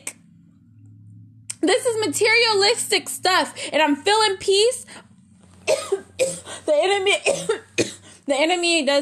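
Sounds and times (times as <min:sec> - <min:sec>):
speech: 0:01.6 - 0:05.1, 0:05.7 - 0:08.9
man coughing harshly while preaching: 0:05.7 - 0:06.6, 0:07.3 - 0:08.2.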